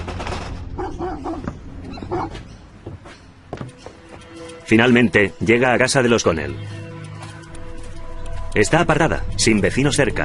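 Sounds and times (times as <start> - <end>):
busy rumbling background: 0.0 - 10.2
dog barking in short rough bursts: 0.8 - 2.4
speech: 4.7 - 6.8, 8.6 - 10.2.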